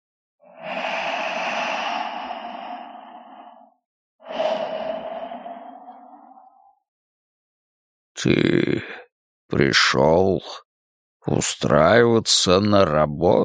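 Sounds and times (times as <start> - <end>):
noisy inhale: 0.4 - 6.8
speech: 8.2 - 10.6, 11.2 - 13.4.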